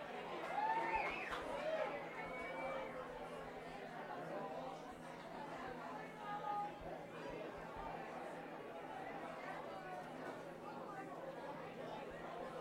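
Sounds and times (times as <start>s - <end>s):
live audience chatter: 0.0s - 12.5s.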